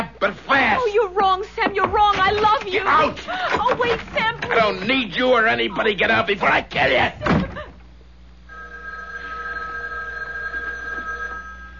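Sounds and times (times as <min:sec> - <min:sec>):
low hum: 0:00.0 - 0:11.7
speech: 0:00.2 - 0:07.4
house telephone ringing with electronic trill: 0:08.5 - 0:11.7.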